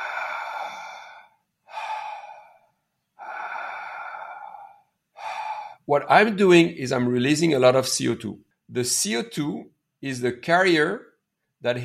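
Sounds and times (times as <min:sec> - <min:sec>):
open-mouth breathing: 0:00.0 - 0:05.9
speech: 0:05.9 - 0:11.8.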